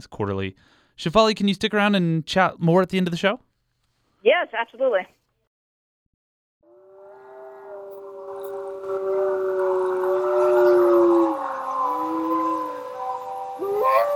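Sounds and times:
speech: 0.0s - 3.5s, 4.2s - 5.2s
wolves howling together: 6.7s - 14.1s.

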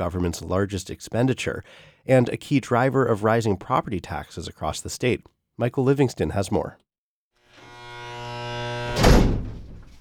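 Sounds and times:
speech: 0.0s - 6.8s
steady electric buzz of a jail door lock: 7.4s - 9.6s
heavy locked jail door banging with a metallic clank: 8.9s - 9.9s.

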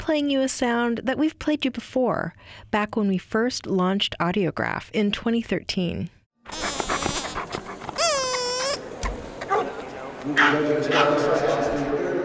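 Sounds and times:
speech: 0.1s - 6.7s, 10.2s - 11.9s
dog whining or howling at an annual kennel club dog show: 6.6s - 8.8s.

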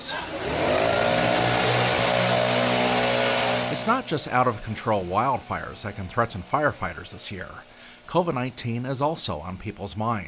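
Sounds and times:
leaf blower blasting gusts of air to simulate harsh winds: 0.0s - 9.6s
speech: 3.9s - 10.2s.

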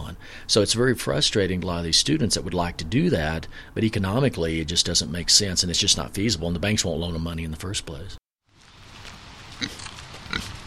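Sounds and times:
speech: 0.5s - 8.2s
pigs oinking on a pig farm in Longmont: 9.6s - 10.6s.

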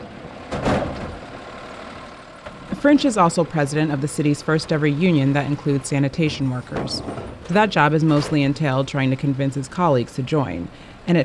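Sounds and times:
garbage truck engine rumble: 0.0s - 11.2s
speech: 2.8s - 11.2s
garbage truck lifting plastic garbage cans: 6.6s - 8.8s.

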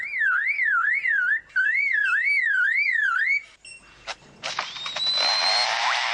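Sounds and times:
Superb Lyrebird siren-like whistle mimicry: 0.0s - 3.5s, 4.8s - 6.0s.

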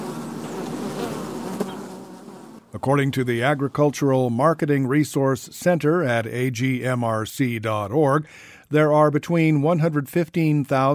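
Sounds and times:
bees buzzing at a beehive bringing in pollen: 0.0s - 2.7s
speech: 2.8s - 10.9s.

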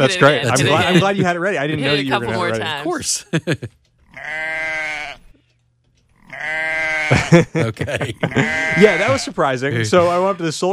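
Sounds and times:
speech: 0.0s - 4.6s, 6.4s - 10.7s
laughter: 0.2s - 3.8s, 7.0s - 10.4s
sheep bleating: 4.1s - 5.4s, 6.2s - 7.3s, 8.3s - 9.4s.

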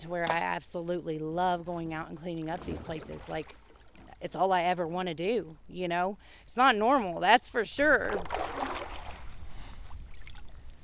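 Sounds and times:
speech: 0.0s - 3.6s, 4.2s - 8.6s
kayak paddled on a river off a riverbank in Kentucky: 2.3s - 4.2s, 8.0s - 9.5s.

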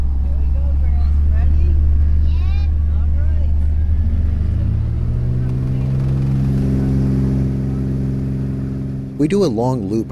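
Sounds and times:
small airplane engine droning during flight: 0.0s - 10.0s
speech: 9.2s - 10.0s.

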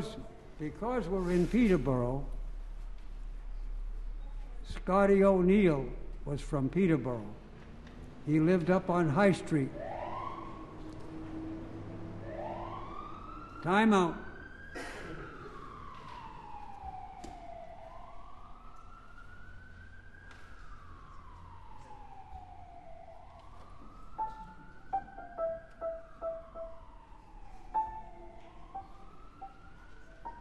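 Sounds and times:
speech: 0.6s - 2.4s, 4.7s - 7.4s, 8.2s - 9.9s, 13.6s - 14.2s
wailing siren sounding outside: 9.6s - 30.3s.

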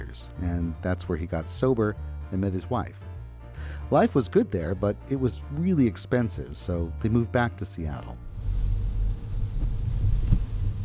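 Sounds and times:
speech: 0.1s - 8.3s
private car engine and road rumble heard from inside the cabin: 8.3s - 10.8s.

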